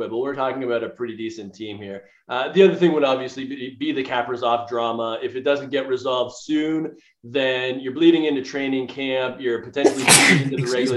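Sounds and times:
speech: 0.0s - 10.9s
person sneezing: 9.8s - 10.9s
laughter: 9.9s - 10.9s.

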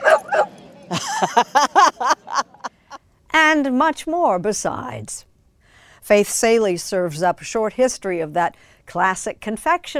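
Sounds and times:
dogs whimpering yelps at a dog park: 0.0s - 0.5s
several dogs barking at a dog park: 0.0s - 0.6s
laughter: 0.8s - 2.7s
speech: 0.9s - 1.6s, 3.6s - 5.3s, 6.0s - 9.9s.

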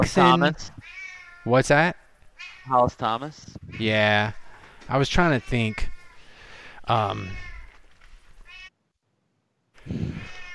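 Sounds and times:
speech: 0.0s - 0.8s, 1.4s - 2.0s, 2.6s - 5.9s, 6.9s - 7.5s, 9.9s - 10.3s
loud drawn-out cat meows: 0.2s - 1.5s, 2.4s - 2.9s, 5.2s - 6.2s, 7.0s - 7.8s, 8.4s - 8.7s, 10.0s - 10.5s.

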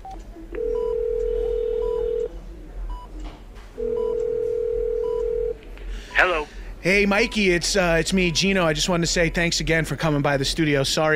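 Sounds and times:
telephone line tone placing an outgoing call: 0.6s - 2.3s, 3.8s - 5.6s
speech: 6.2s - 11.1s.

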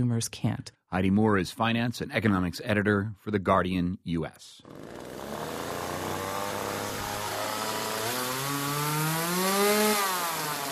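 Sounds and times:
speech: 0.0s - 5.3s
chainsaw engine revving: 4.6s - 10.6s.

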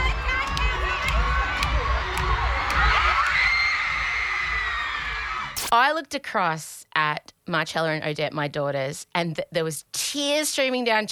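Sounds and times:
large concert crowd cheering as performer takes stage: 0.0s - 5.7s
speech: 5.8s - 11.1s.

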